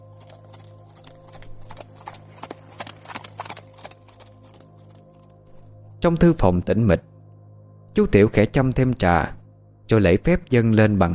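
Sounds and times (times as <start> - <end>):
hooves of a horse pulling a cart galloping at night: 0.0 - 5.7
speech: 6.0 - 7.1, 8.0 - 11.1.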